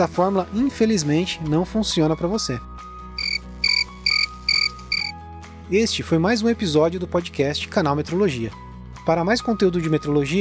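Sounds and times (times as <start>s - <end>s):
speech: 0.0s - 2.8s, 5.7s - 10.4s
crickets chirping: 3.2s - 5.1s.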